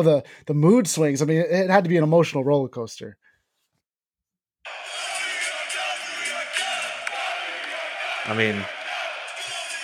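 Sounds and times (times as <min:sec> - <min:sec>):
speech: 0:00.0 - 0:03.3, 0:08.3 - 0:08.8
basketball playoff arena crowd cheering and yelling: 0:04.7 - 0:09.8.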